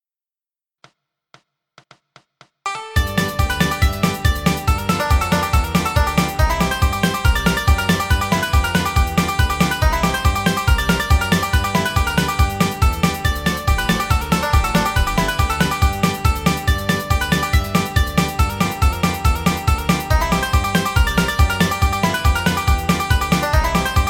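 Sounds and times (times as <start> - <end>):
bluegrass banjo playing in G: 2.7 - 24.0.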